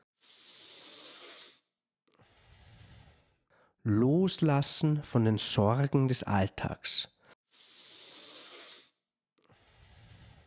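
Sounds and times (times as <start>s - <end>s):
deep breathing during a guided breathing exercise: 0.0s - 3.8s, 7.2s - 10.4s
speech: 3.8s - 7.2s.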